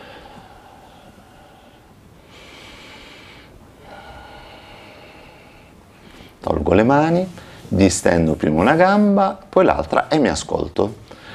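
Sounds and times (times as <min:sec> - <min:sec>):
person breathing in and out during a floor exercise: 0:00.0 - 0:06.4, 0:11.0 - 0:11.3
faint hiss: 0:00.0 - 0:11.3
speech: 0:06.4 - 0:11.2.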